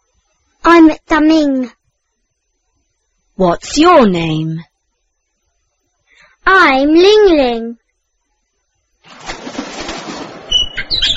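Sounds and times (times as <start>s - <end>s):
speech: 0.8s - 1.8s, 3.4s - 4.7s, 6.4s - 7.8s
bird wings flapping and rustling: 9.0s - 11.1s
bird chirping: 10.5s - 11.1s.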